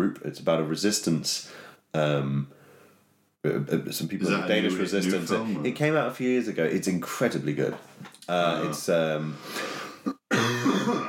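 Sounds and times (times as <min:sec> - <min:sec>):
speech: 0:00.1 - 0:02.6, 0:03.4 - 0:09.8
person coughing: 0:10.0 - 0:11.0
throat clearing: 0:10.1 - 0:11.0.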